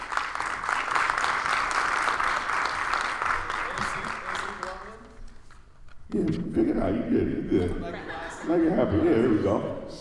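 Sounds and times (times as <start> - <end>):
crowd applauding a candidate being introduced: 0.0 - 5.1
speech: 6.2 - 10.0
laughter: 6.5 - 9.7.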